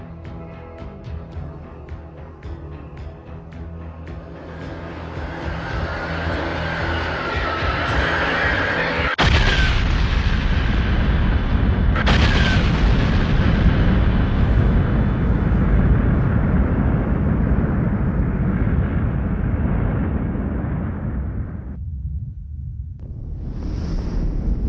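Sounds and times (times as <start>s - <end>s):
whooshing swell: 4.2s - 9.2s
supernova explosion sound effect, deep roaring explosion: 9.2s - 24.6s.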